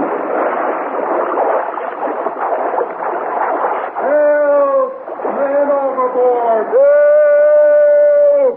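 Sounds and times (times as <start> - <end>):
broadband splashing water: 0.0 - 7.1
man yelling while falling overboard: 4.0 - 5.0, 6.4 - 8.5.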